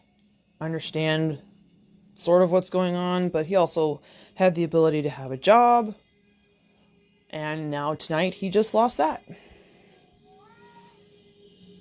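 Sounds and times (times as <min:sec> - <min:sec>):
low steady hum: 0:00.0 - 0:11.8
speech: 0:00.6 - 0:01.5, 0:02.2 - 0:06.0, 0:07.3 - 0:09.5
cat meowing: 0:10.3 - 0:11.0.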